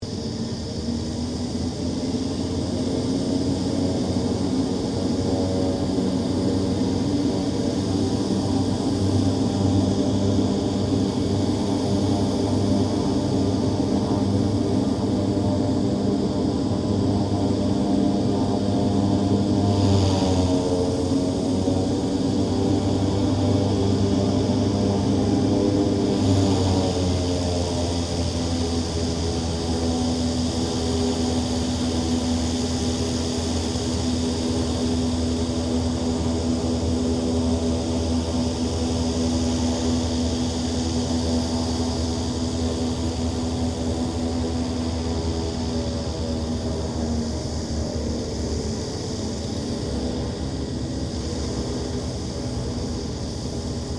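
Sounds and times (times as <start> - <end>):
King Air 350 airplane preflight: 0.0 - 53.9.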